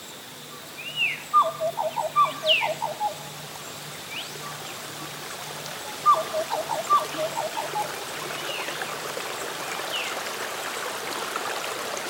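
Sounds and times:
butcherbird singing in a rainforest: 0:00.6 - 0:04.8, 0:06.0 - 0:08.7
creek rushing in a rainforest: 0:00.8 - 0:12.0.

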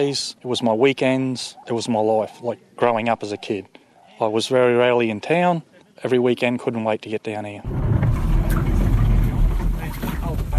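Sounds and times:
speech: 0:00.0 - 0:07.8
wind: 0:00.0 - 0:10.5
boat engine rumbling on a river: 0:07.6 - 0:10.5.

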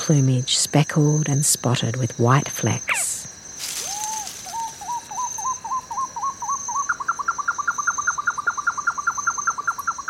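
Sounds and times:
speech: 0:00.1 - 0:03.1
baby owl calling with short rising whistled notes: 0:02.9 - 0:09.9.

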